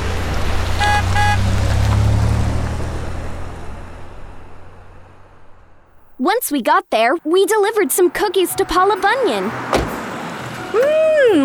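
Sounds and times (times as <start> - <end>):
food truck engine rumbling: 0.0 - 6.4, 7.2 - 11.4
food truck short bright horn toots: 0.8 - 1.5
speech: 6.2 - 9.8, 10.7 - 11.4.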